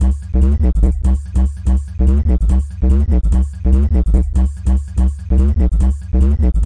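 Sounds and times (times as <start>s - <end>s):
bass: 0.0s - 6.6s.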